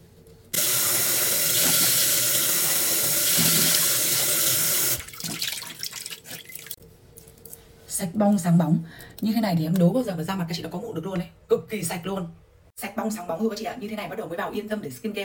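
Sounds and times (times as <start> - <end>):
running tap water rinsing a face after foaming cleanser: 0.6 - 6.8
water splashing and dripping: 1.4 - 6.8
speech: 8.0 - 15.2.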